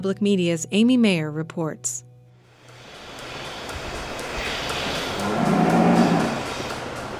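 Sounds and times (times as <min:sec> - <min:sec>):
speech: 0:00.0 - 0:02.0
noisy barn or fairground background: 0:00.0 - 0:07.1
dairy cow mooing at a fair: 0:05.2 - 0:06.5.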